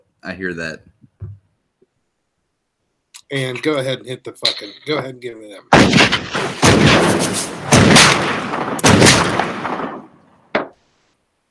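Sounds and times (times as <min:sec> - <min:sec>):
speech: 0:00.2 - 0:00.9, 0:03.3 - 0:08.9
gunshot sound effect: 0:05.7 - 0:10.8.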